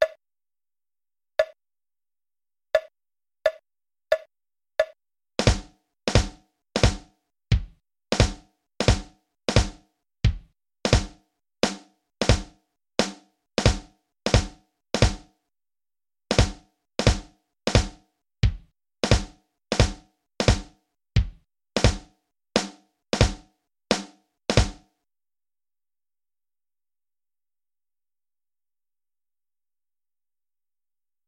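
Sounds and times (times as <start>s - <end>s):
drum warm-up: 5.4s - 15.2s, 16.3s - 24.8s.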